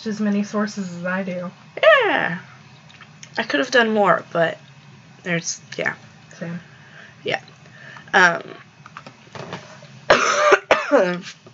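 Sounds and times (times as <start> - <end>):
speech: 0.0 - 2.5, 3.4 - 4.6, 5.2 - 7.5, 8.1 - 8.6, 10.9 - 11.4
person coughing: 10.1 - 11.1.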